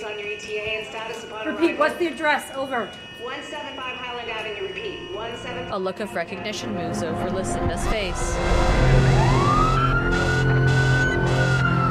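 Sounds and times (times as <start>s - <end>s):
fire truck siren wailing: 0.0s - 11.8s
speech: 0.5s - 9.2s
low rumble: 7.5s - 10.4s.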